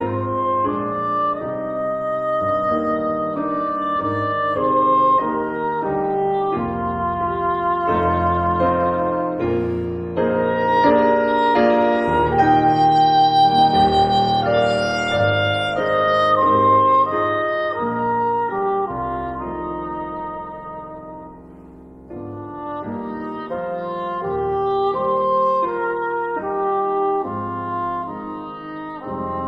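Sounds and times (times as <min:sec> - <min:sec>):
instrumental trumpet playing: 0:00.0 - 0:21.5, 0:22.2 - 0:29.4.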